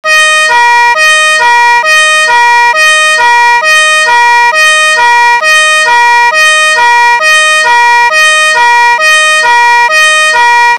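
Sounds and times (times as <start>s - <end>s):
two-tone fire brigade siren 261-349Hz: 0.0s - 10.7s.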